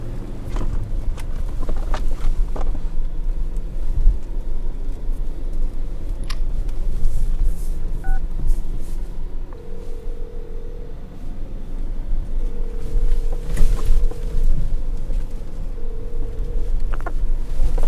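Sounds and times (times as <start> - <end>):
car engine and road rumble: 0.0 - 17.8
telephone keypad tones dialled on speakerphone inside a car: 8.0 - 8.2, 9.6 - 11.0, 12.3 - 14.6, 15.6 - 17.0.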